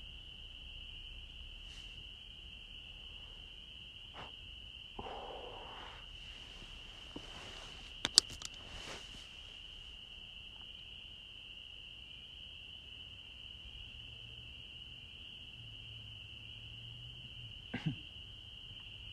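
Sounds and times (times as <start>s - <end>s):
cricket trilling in Holliston, Massachusetts: 0.0s - 19.1s
faint low hum: 0.0s - 19.1s
sharp clicks: 8.0s - 8.6s.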